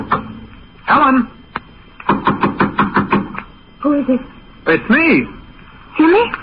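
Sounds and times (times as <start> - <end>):
speech: 0.9 - 1.4, 3.8 - 5.4, 6.0 - 6.4
knocking on a locked door: 2.1 - 3.4.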